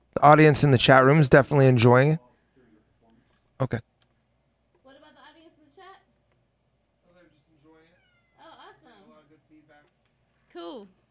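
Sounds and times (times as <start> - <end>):
faint low hum: 0.0 - 11.1
speech: 0.2 - 2.3, 3.6 - 3.9
big orange domestic cat meowing while giving cuddles: 7.9 - 8.7.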